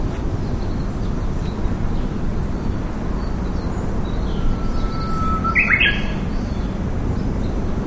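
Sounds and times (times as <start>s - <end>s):
low rumbling background noise: 0.0s - 7.8s
bird whistle and chirps: 4.2s - 6.7s.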